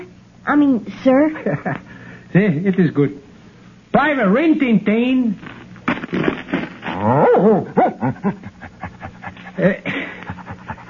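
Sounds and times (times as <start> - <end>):
speech: 0.4 - 3.2, 3.9 - 5.5, 7.0 - 8.6, 9.6 - 10.0
dog barking in excited yelps at a medal ceremony: 7.2 - 8.0.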